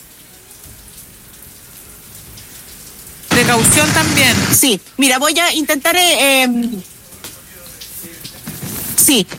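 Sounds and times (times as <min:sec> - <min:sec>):
heavy rain pouring down: 0:00.0 - 0:09.3
speech: 0:03.5 - 0:06.9, 0:09.0 - 0:09.3.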